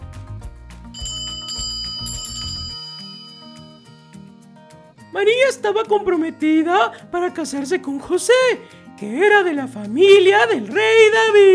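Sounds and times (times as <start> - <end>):
bright high-pitched bell ringing: 0.0 - 4.6
speech: 5.2 - 11.5.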